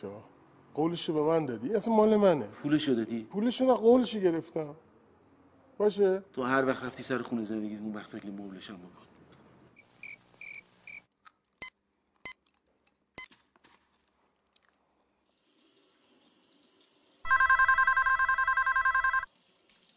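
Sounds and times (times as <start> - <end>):
speech: 0.0 - 4.9, 5.8 - 9.1
telephone ringing with a trilling burst: 17.2 - 19.3.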